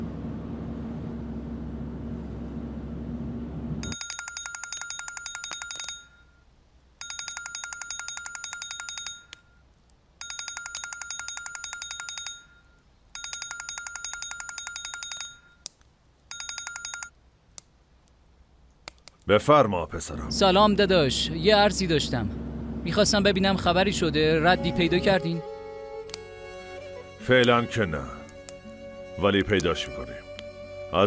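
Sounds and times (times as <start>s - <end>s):
telephone ringing heard through the line during a call: 3.8s - 6.4s, 7.0s - 9.3s, 10.2s - 15.6s, 16.3s - 17.2s
speech: 19.3s - 25.5s, 27.2s - 28.2s, 29.2s - 30.3s.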